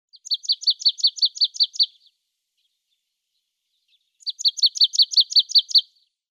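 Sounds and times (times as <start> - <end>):
Parus palustris marsh tit calling: 0.1 - 2.1, 3.8 - 6.0.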